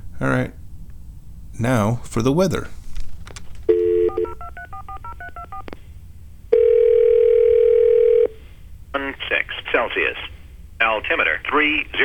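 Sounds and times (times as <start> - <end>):
speech: 0.2 - 0.6, 1.6 - 2.8, 10.0 - 12.0
touch-tone telephone keypad beeps dialing an airport weather line: 3.7 - 5.7
long steady loud telephone tone: 6.5 - 8.5.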